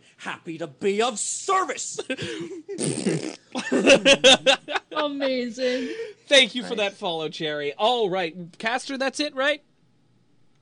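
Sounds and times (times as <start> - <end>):
speech: 0.2 - 9.7
laughter: 2.0 - 3.0, 3.6 - 6.9
person blowing a loud wet raspberry imitating a fart: 2.7 - 3.7.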